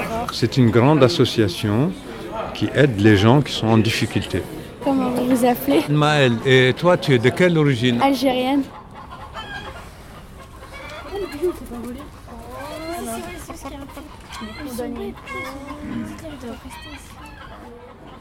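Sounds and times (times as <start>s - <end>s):
hens clucking in a henhouse: 0.0s - 18.1s
speech: 0.3s - 8.8s
hens squawking in a henhouse: 6.0s - 18.1s.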